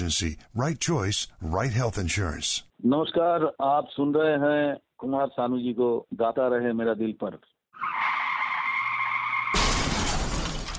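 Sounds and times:
speech: 0.0 - 8.0
car tire screeching: 7.8 - 9.6
car crash: 9.0 - 10.7
glass breaking: 9.5 - 10.7.

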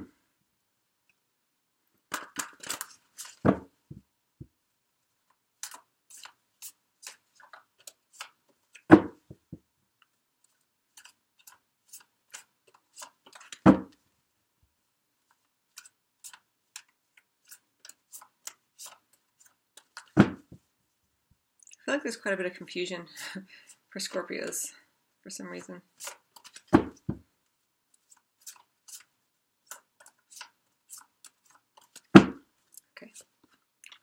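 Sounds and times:
tarot cards shuffled by hand: 2.1 - 3.6, 5.2 - 9.3, 10.4 - 14.0, 15.2 - 20.5, 25.9 - 27.2, 28.0 - 33.6
speech: 22.0 - 26.2.

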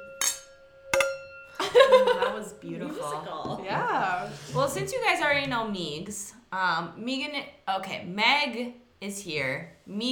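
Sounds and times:
glasses clinking in a toast: 0.0 - 2.1
thin ringing tone of clinked glasses: 0.0 - 2.2
speech: 1.7 - 10.1.

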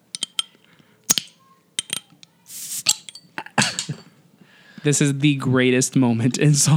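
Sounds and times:
glass soda bottle clinking and tapping: 0.0 - 4.2
mandarin-flavored soda fizzing: 1.1 - 3.2
speech: 4.8 - 6.7.

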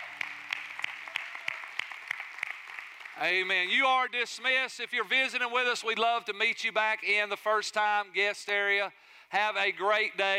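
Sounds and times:
audience applauding: 0.0 - 3.7
speech: 3.2 - 10.3.

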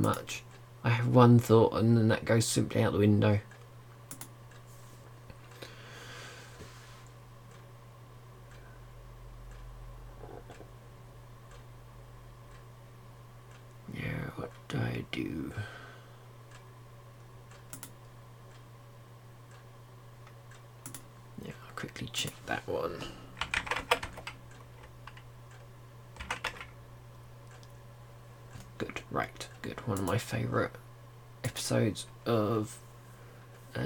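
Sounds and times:
speech: 0.0 - 3.5, 31.9 - 32.8
steady low electrical hum: 0.0 - 33.8
typing on a computer keyboard: 4.1 - 4.3, 17.7 - 18.0, 23.4 - 25.2, 26.2 - 26.8.

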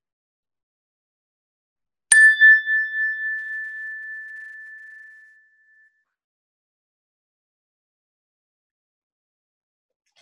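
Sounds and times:
meditation chime ringing: 2.1 - 5.4.

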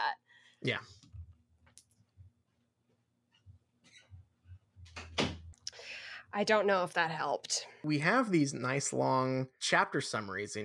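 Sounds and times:
speech: 0.1 - 1.0, 6.3 - 10.6
door closing: 4.9 - 5.5.

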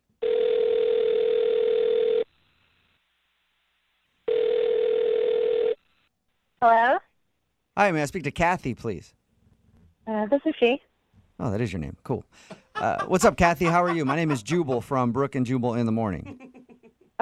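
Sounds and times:
phone line dial tone: 0.2 - 2.3, 4.3 - 5.8
speech: 7.8 - 9.2, 10.2 - 10.9, 11.4 - 16.5
laughter: 12.4 - 17.1.

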